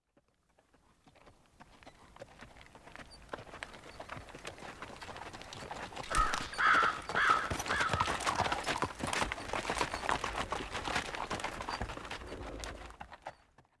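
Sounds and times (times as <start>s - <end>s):
horses: 0.0s - 13.7s
crows: 6.1s - 8.6s.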